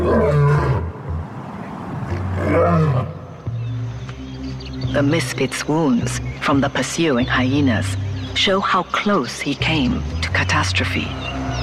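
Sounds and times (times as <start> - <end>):
lion roaring: 0.0 - 1.0, 2.0 - 3.3
speech: 5.0 - 11.4.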